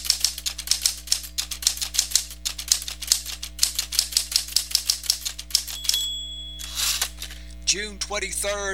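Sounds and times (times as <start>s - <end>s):
mechanical typewriter keystrokes: 0.0s - 7.2s
typewriter carriage-return bell ding: 5.3s - 7.2s
speech: 7.7s - 8.7s.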